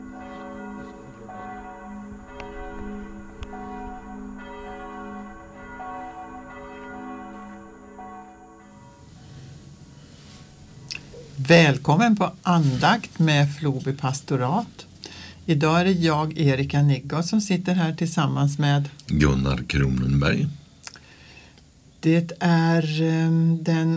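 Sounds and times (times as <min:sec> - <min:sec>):
church bells ringing: 0:00.0 - 0:12.1
speech: 0:11.5 - 0:14.9, 0:15.5 - 0:20.6, 0:22.0 - 0:23.9.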